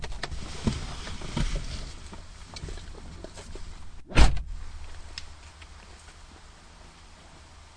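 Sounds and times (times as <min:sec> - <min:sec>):
rustling: 0:00.0 - 0:07.2
steady low rumble: 0:00.0 - 0:07.3
car door shutting as driver and passenger swap seats: 0:03.9 - 0:05.1.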